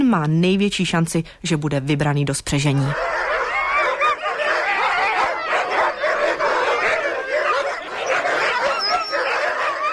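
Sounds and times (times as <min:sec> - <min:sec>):
speech: 0:00.1 - 0:03.2
large pack of sled dogs barking and yipping: 0:02.7 - 0:09.9.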